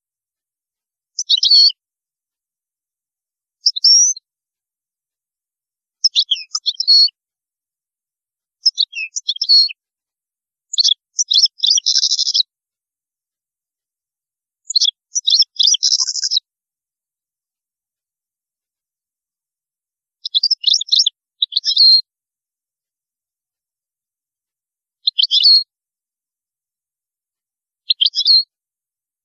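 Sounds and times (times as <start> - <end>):
European goldfinch singing: 1.2 - 1.7, 3.6 - 4.2, 6.0 - 7.2, 8.6 - 9.8, 10.7 - 12.5, 14.7 - 16.4, 20.2 - 22.0, 25.0 - 25.7, 27.9 - 28.5.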